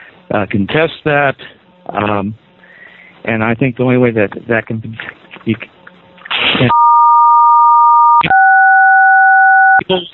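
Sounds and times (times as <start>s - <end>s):
speech: 0.3s - 2.4s, 3.2s - 5.7s, 6.5s - 6.8s, 9.9s - 10.1s
phone tones sounding during a committee meeting: 6.7s - 10.1s.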